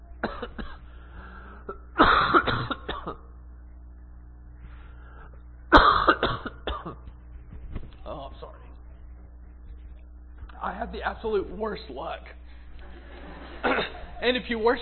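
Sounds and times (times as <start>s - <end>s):
low steady hum: 0.0s - 14.8s
person coughing in harsh rasping bursts: 0.2s - 0.9s, 1.6s - 3.3s, 5.7s - 7.1s, 13.6s - 14.1s
speech: 10.9s - 12.4s, 14.2s - 14.8s
laughter: 12.8s - 14.4s.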